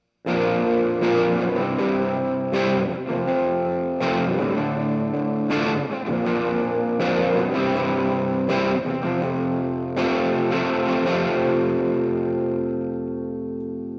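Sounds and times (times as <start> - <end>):
electric guitar: 0.2 - 13.9.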